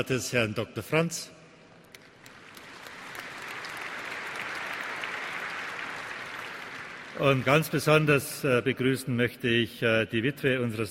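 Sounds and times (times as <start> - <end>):
speech: 0.0 - 1.4, 7.2 - 10.8
audience applause at a formal company reception: 2.1 - 8.0.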